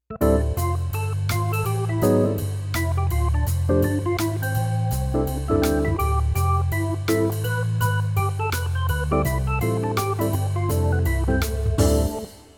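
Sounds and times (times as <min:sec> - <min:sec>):
jazz mix: 0:00.0 - 0:12.5.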